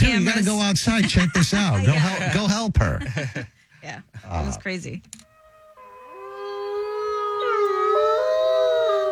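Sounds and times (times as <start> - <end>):
speech: 0.0 - 5.3
wolf howling: 5.2 - 9.1.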